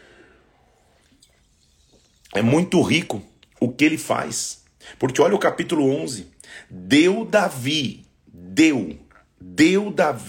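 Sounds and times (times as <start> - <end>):
faint hiss: 0.0 - 10.2
person taking quiet sips of water: 0.6 - 2.4, 9.1 - 9.4
speech: 2.3 - 10.2.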